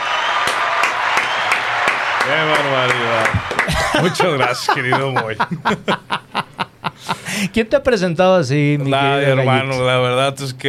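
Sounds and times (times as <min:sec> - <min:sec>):
group applause welcoming a guest: 0:00.0 - 0:05.5
speech: 0:02.3 - 0:10.6
laughter: 0:02.8 - 0:07.4.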